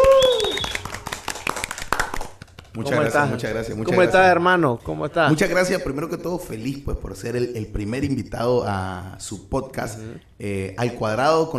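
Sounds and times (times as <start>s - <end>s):
high whooping cheer: 0.0s - 1.0s
small group applauding: 0.0s - 3.2s
speech: 2.8s - 11.5s.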